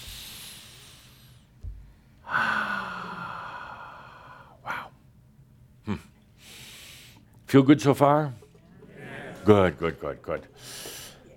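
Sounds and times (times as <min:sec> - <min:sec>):
deep breath taken together in a guided session: 0:00.0 - 0:05.0, 0:06.4 - 0:07.3, 0:10.6 - 0:11.3
speech: 0:07.5 - 0:08.4, 0:09.5 - 0:10.8.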